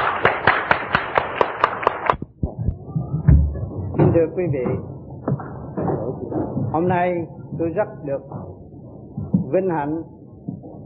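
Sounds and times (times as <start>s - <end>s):
audience applause: 0.0s - 2.2s
room noise: 0.0s - 10.8s
speech: 4.2s - 4.9s, 6.3s - 8.5s, 9.5s - 10.2s.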